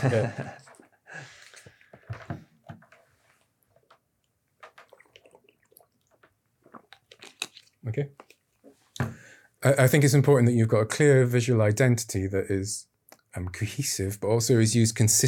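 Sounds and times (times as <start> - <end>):
speech: 0.0 - 0.6, 7.8 - 8.2, 9.6 - 15.2
laughter: 0.0 - 0.8
soft breaths: 1.0 - 2.2, 8.7 - 9.6
person gulping and swallowing water: 3.6 - 8.4.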